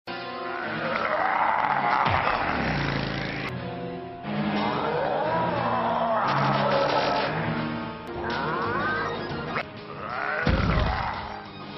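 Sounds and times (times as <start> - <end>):
roars: 0.3 - 3.5, 4.4 - 7.3, 8.2 - 11.5.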